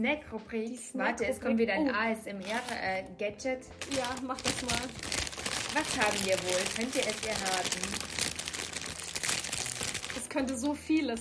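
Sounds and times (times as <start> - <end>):
speech: 0.0 - 5.2, 5.8 - 8.2, 10.4 - 11.2
chip bag crinkling: 2.4 - 3.0, 3.8 - 11.0.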